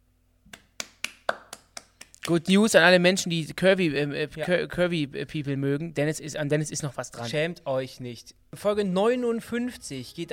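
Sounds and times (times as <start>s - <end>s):
hand slaps on a person's own belly: 0.5s - 2.3s
speech: 2.3s - 10.3s.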